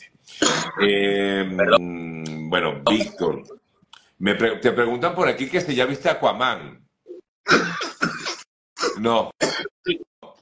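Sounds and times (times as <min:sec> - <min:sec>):
speech: 0:00.0 - 0:03.6, 0:04.2 - 0:06.8, 0:09.0 - 0:10.1
harsh raspy allergic coughing: 0:00.4 - 0:00.8, 0:07.5 - 0:10.0.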